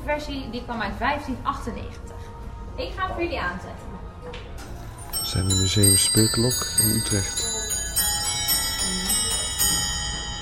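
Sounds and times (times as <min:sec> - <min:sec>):
speech: 0:00.1 - 0:04.5, 0:05.3 - 0:07.6, 0:08.9 - 0:09.2
small clock carillon playing bell chime tune: 0:05.0 - 0:10.4.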